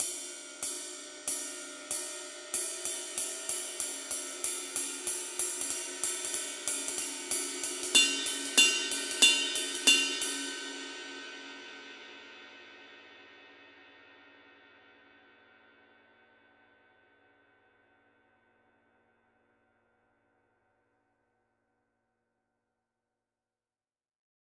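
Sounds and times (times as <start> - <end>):
24 inch medium ride cymbal pattern: 0.0 - 11.2.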